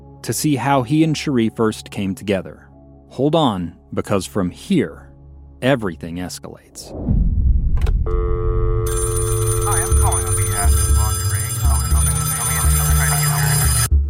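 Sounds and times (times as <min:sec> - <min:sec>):
speech: 0:00.2 - 0:07.4, 0:08.0 - 0:09.1
telephone ringing with a loud sustained electronic trill: 0:08.2 - 0:13.9.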